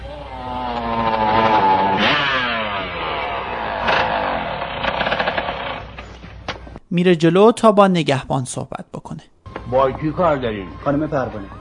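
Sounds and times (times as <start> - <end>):
motorcycle engine revving while pulling away at night: 0.0 - 6.4
speech: 7.0 - 11.5.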